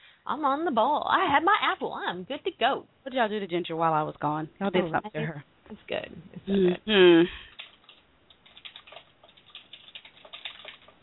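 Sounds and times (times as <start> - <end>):
speech: 0.2 - 7.5
rapid uneven typing on a computer keyboard: 7.5 - 11.0.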